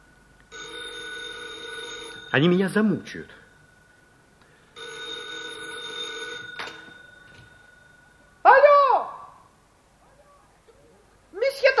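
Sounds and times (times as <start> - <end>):
electric telephone bell ringing: 0.5 - 3.7, 4.6 - 8.4
speech: 2.3 - 3.4.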